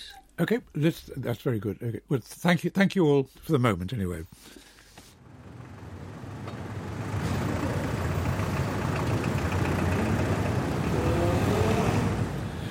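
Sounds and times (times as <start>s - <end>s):
speech: 0.4s - 4.7s
London street traffic rumbling: 5.2s - 12.7s.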